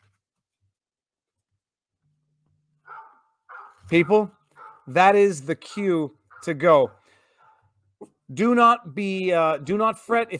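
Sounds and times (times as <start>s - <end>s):
dog barking: 2.8s - 5.0s, 5.6s - 7.7s
speech: 3.9s - 7.0s, 8.3s - 10.3s.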